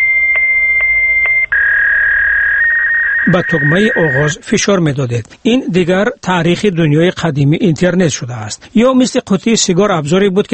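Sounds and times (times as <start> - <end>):
fax machine connection tones after dialing a fax number: 0.0 - 4.6
speech: 3.3 - 10.5.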